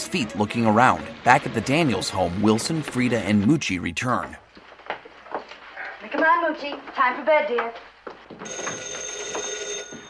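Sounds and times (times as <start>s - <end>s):
speech: 0.1s - 4.4s, 6.1s - 9.1s
telephone ringing in a family home: 8.4s - 10.0s.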